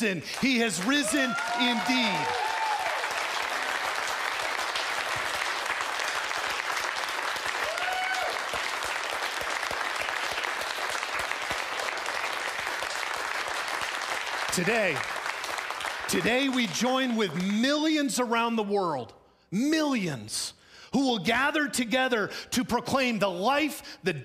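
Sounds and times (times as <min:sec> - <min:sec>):
speech: 0:00.0 - 0:02.5, 0:14.6 - 0:15.2, 0:16.1 - 0:24.2
large crowd clapping loudly on Easter morning: 0:00.0 - 0:18.0.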